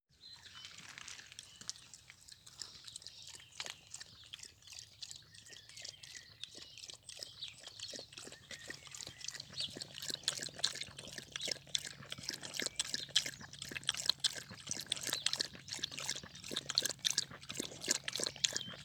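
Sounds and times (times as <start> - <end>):
dog lapping: 1.7 - 18.8.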